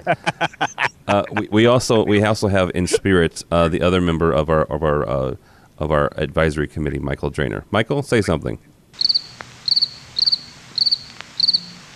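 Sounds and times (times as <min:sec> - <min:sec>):
laughter: 0:00.0 - 0:03.8
speech: 0:00.0 - 0:09.4
crickets chirping in rapid high trills: 0:09.0 - 0:11.9.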